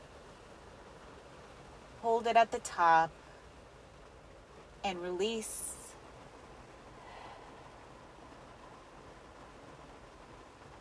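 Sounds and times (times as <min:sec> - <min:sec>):
soft rain pattering on a car roof: 0:00.0 - 0:10.7
speech: 0:02.0 - 0:03.2, 0:04.8 - 0:05.8.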